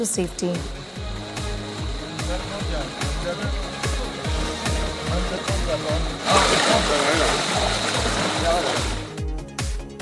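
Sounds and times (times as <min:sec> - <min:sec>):
speech: 0:00.0 - 0:00.9, 0:02.3 - 0:04.5, 0:05.1 - 0:09.0
rushing floodwater at a flooded crossing on the Oranga River in Valsad after monsoon rains: 0:01.8 - 0:09.1.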